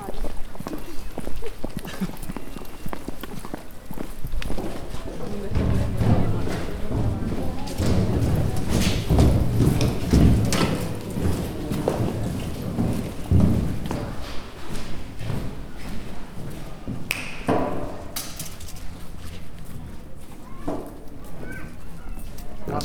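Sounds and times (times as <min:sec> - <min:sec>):
hard heeled shoes clopping: 0:02.3 - 0:17.8
people talking: 0:04.5 - 0:14.6, 0:20.0 - 0:22.8.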